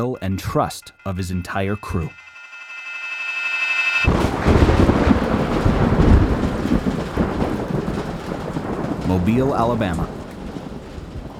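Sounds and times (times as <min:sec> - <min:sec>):
speech: 0:00.0 - 0:02.2, 0:09.1 - 0:10.2
sharp crack of thunder in Mobile Alabama summer thunderstorm: 0:04.0 - 0:11.3
pouring rain around an Air Force hangar in Mobile Alabama: 0:04.1 - 0:11.3.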